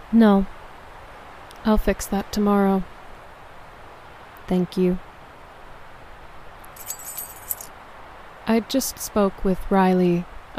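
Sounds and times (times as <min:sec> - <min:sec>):
speech: 0:00.1 - 0:00.6, 0:01.6 - 0:02.9, 0:04.5 - 0:05.1, 0:08.5 - 0:10.5
bunch of manor keys jangling: 0:06.7 - 0:07.7.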